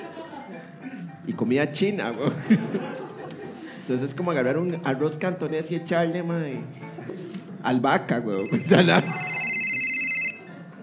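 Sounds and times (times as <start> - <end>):
laughter: 0.0 - 1.2, 2.0 - 4.3, 6.8 - 7.4, 8.4 - 10.7
speech: 1.3 - 3.1, 3.9 - 9.3
telephone ringing with electronic warble: 8.4 - 10.6.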